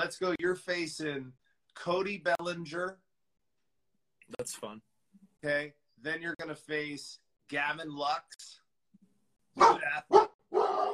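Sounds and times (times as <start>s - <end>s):
speech: 0.1s - 3.0s, 4.3s - 8.6s, 9.6s - 10.9s
hound dog baying howls: 9.6s - 10.9s
hound dog short sharp bark: 9.6s - 10.9s.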